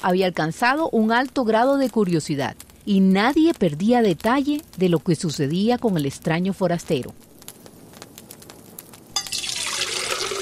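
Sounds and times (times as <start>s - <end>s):
speech: 0.0s - 7.3s
water gushing from a tap into a pot: 9.2s - 10.4s.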